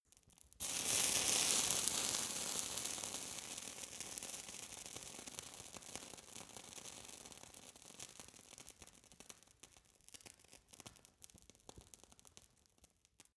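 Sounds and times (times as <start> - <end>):
fire torch sizzling: 0.6 - 5.0.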